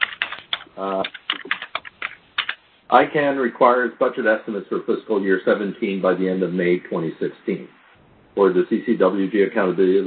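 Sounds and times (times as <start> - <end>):
typing on a computer keyboard: 0.0 - 2.6
speech: 0.8 - 1.2, 2.9 - 7.8, 8.4 - 10.0.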